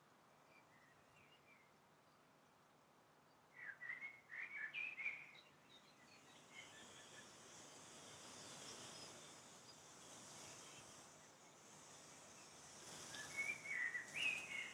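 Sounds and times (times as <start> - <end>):
soft steady outdoor hiss: 0.0 - 14.7
birds chirping and trilling in short whistled bursts: 3.6 - 14.7.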